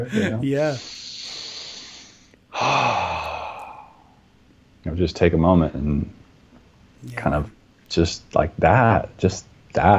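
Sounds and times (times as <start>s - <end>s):
speech: 0.0s - 1.0s, 4.8s - 6.2s, 7.0s - 9.9s
person breathing deeply: 0.1s - 4.2s.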